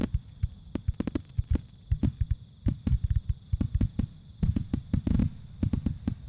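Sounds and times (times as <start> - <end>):
fireworks exploding in booms and sharp cracks: 0.0 - 6.2.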